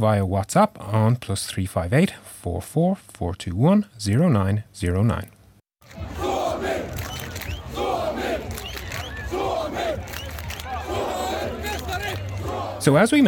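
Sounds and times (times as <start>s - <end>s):
speech: 0.0s - 5.4s, 12.8s - 13.2s
large crowd of thousands cheering an ice hockey World Championship win in Tampere: 5.8s - 12.9s.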